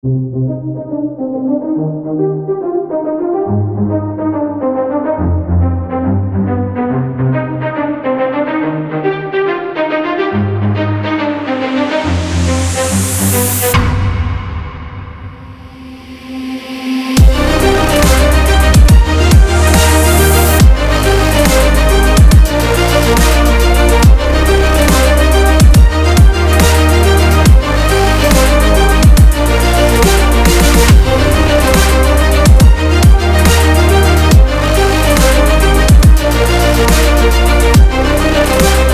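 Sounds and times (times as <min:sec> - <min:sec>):
epic cinematic trailer music: 0:00.0 - 0:38.9.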